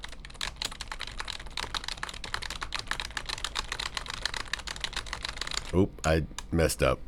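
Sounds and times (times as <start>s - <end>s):
typing on a computer keyboard: 0.0s - 5.8s
speech: 5.7s - 7.0s.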